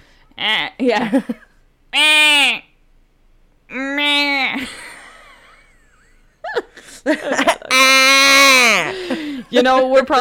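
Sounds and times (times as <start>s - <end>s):
speech: 0.4s - 2.6s, 7.0s - 10.2s
people imitating goat bleats with their voices: 1.9s - 2.7s, 3.7s - 4.7s, 7.7s - 9.0s.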